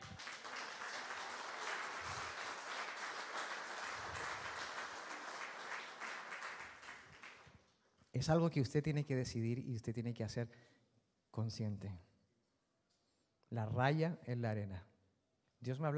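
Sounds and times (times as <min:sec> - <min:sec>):
audience applauding: 0:00.0 - 0:07.5
speech: 0:08.2 - 0:10.8, 0:11.4 - 0:12.1, 0:13.5 - 0:14.9, 0:15.6 - 0:15.9.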